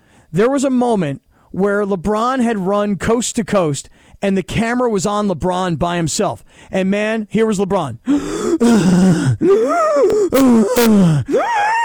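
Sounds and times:
speech: 0.3s - 11.8s
man imitating heavy labored breathing: 8.0s - 11.8s.

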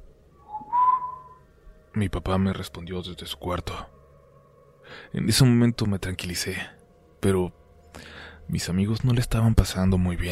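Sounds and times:
person arriving home whistling: 0.4s - 1.4s
speech: 2.0s - 4.0s, 4.9s - 10.3s.

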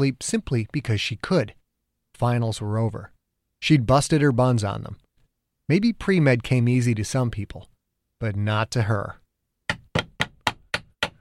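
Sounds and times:
speech: 0.0s - 1.6s, 2.2s - 5.0s, 5.7s - 9.2s
hammer pounding nails: 9.7s - 11.1s.

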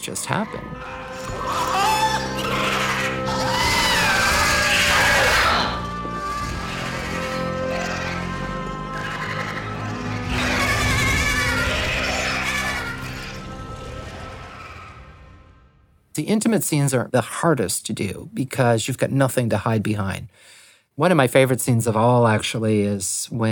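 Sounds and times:
speech: 0.0s - 1.8s, 16.2s - 23.4s
goats screaming: 0.0s - 15.1s.

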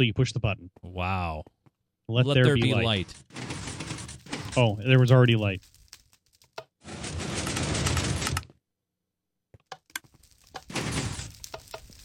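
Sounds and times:
speech: 0.0s - 3.6s, 4.5s - 5.7s
heavy mechanical door sliding shut: 3.3s - 4.7s, 6.8s - 8.5s, 10.7s - 11.4s
doors sliding shut: 3.3s - 4.8s, 6.9s - 8.5s, 10.7s - 11.8s.

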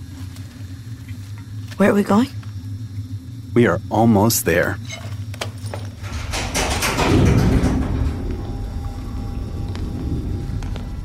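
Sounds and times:
quieter mechanical hum with faint ticks: 0.0s - 11.0s
speech: 1.8s - 2.4s, 3.6s - 5.1s
faulty heavy door grinding and rattling open: 5.8s - 11.0s.

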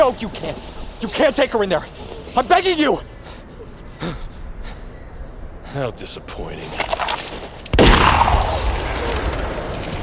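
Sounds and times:
speech: 0.0s - 3.1s, 4.0s - 4.2s, 5.7s - 7.1s
gunshot fired outdoors in the snow: 7.7s - 10.0s.

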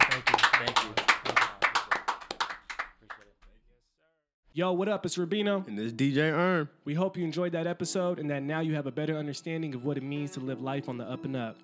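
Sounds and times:
short round of applause from a small group: 0.0s - 3.3s
speech: 4.6s - 11.6s.

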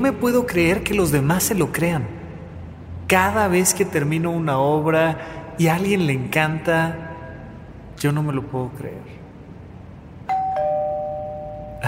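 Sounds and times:
speech: 0.0s - 2.2s, 3.1s - 7.1s, 8.0s - 9.2s
two-tone doorbell chime: 10.2s - 11.8s.

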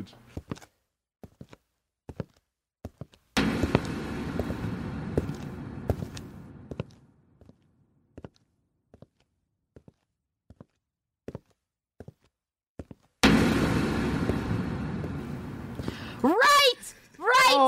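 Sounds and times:
speech: 0.0s - 0.6s
footsteps: 0.3s - 16.6s
dense rush of noise: 3.4s - 7.0s, 13.2s - 16.9s.

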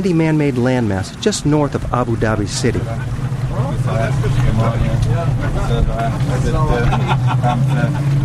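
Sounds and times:
speech: 0.0s - 3.2s, 3.8s - 8.2s
motorboat hull slapping through choppy water: 0.0s - 8.2s
small motorboat engine droning: 0.0s - 8.2s
laughter: 6.3s - 8.2s.

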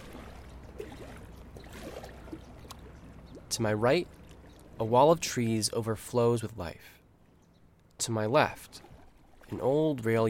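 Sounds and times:
soft splashes of a kayak in a river: 0.0s - 4.9s, 8.5s - 10.2s
river water sloshing and trickling as a kayak enters in Elysian Valley: 0.0s - 10.2s
speech: 3.6s - 4.2s, 4.8s - 7.0s, 8.0s - 8.9s, 9.5s - 10.2s.

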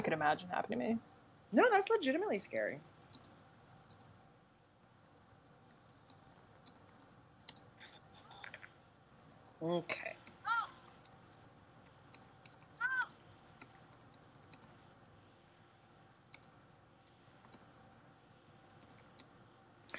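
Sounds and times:
speech: 0.1s - 2.9s, 9.6s - 10.2s
typing on a computer keyboard: 2.2s - 4.1s, 4.8s - 7.7s, 10.2s - 14.9s, 15.8s - 16.5s, 17.2s - 19.9s.

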